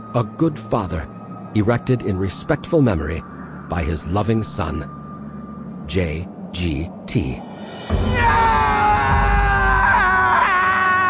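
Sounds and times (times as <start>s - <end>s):
speech: 0.1s - 5.0s, 5.9s - 8.4s
person performing a scream of rage: 8.0s - 11.0s.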